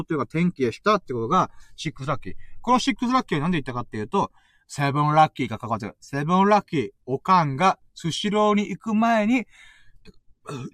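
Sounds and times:
speech: 0.0 - 10.7
soft breathy throat sounds: 9.6 - 10.7
person burping: 10.4 - 10.7.

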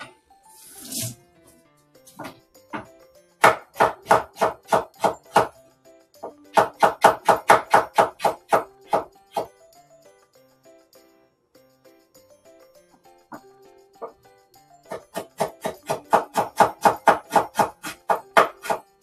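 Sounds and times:
knife chopping ginger on a cutting board: 2.1 - 5.6, 6.2 - 9.5, 14.9 - 18.9.

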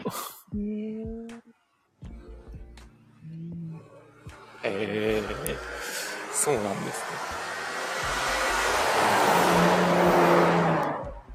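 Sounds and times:
speech: 0.1 - 1.1, 4.6 - 5.8, 6.4 - 8.2
car speeding past outside with engine and tire rush: 4.3 - 11.3.

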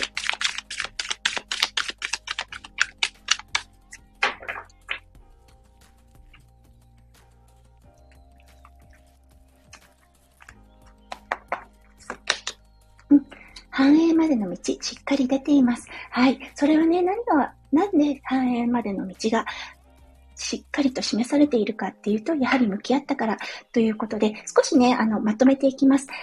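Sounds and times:
oracle cards shuffled and flicked: 0.0 - 5.1, 9.6 - 12.6
speech: 13.8 - 19.6, 20.5 - 26.2.

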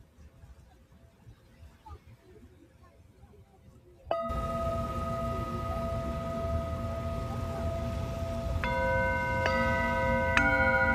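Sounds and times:
Tibetan singing bowl struck and ringing: 4.1 - 10.9
constant rushing noise: 4.1 - 10.9.

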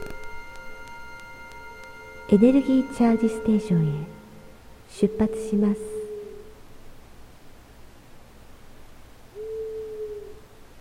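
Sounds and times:
quiet hiss of nighttime noise: 0.0 - 10.7
owl hooting sound effect: 1.8 - 6.6, 9.3 - 10.5
speech: 2.3 - 4.2, 5.0 - 5.9.

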